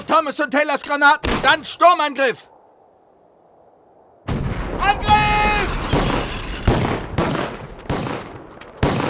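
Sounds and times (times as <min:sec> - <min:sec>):
speech: 0:00.1 - 0:02.5
gunfire in a battle near a church, radio drama sound effect: 0:01.2 - 0:01.8, 0:04.3 - 0:09.0.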